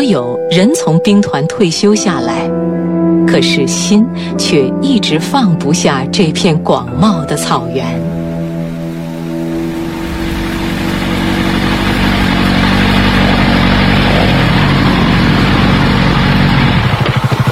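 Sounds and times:
speech: 0:00.0 - 0:02.7, 0:03.3 - 0:08.2
motorcycle engines running and revving: 0:08.0 - 0:17.5.

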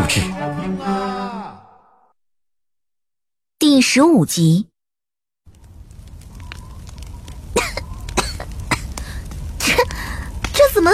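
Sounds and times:
speech: 0:00.1 - 0:01.2, 0:03.8 - 0:04.7
person coughing after choking on wine: 0:07.6 - 0:08.9.

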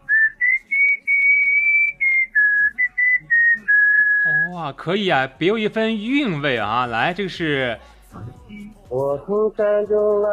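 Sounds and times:
child whistling a smooth steady melody: 0:00.0 - 0:04.4
speech: 0:04.5 - 0:08.3, 0:08.9 - 0:10.3.

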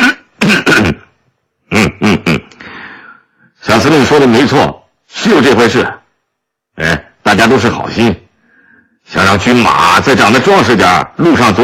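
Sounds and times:
factory director clearing his throat: 0:00.0 - 0:02.6
speech: 0:04.0 - 0:06.0, 0:06.8 - 0:08.2, 0:09.1 - 0:11.6.

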